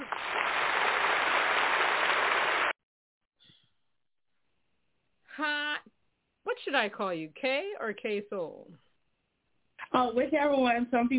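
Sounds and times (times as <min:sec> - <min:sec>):
crowd applauding a female vocal performer: 0:00.0 - 0:02.8
speech: 0:06.7 - 0:08.8, 0:09.9 - 0:11.1.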